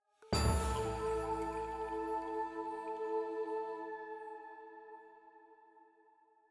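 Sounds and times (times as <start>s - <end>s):
flute: 0.2s - 5.6s
jingle: 0.3s - 3.4s
choir singing: 0.3s - 5.7s.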